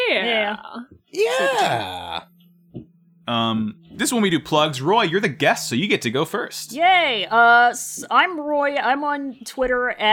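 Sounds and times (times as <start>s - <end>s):
speech: 0.1s - 2.3s, 3.3s - 10.1s
person yawning: 1.1s - 2.3s.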